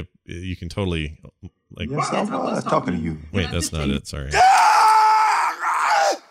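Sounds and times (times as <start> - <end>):
speech: 0.0 - 4.7
piercing scream from a film clip: 4.3 - 6.2.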